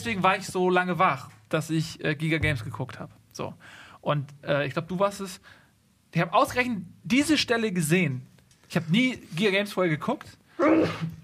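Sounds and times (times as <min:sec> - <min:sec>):
speech: 0:00.0 - 0:11.2
sneeze: 0:10.6 - 0:11.2.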